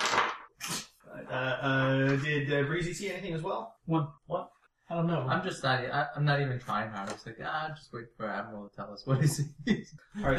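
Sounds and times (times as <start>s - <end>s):
dice rolling on a hard tabletop: 0.0s - 0.5s
speech: 1.3s - 10.3s.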